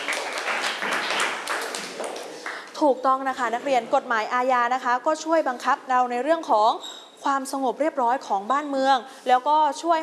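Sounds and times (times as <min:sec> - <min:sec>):
students applauding in a classroom: 0:00.0 - 0:02.8
speech: 0:02.8 - 0:10.0.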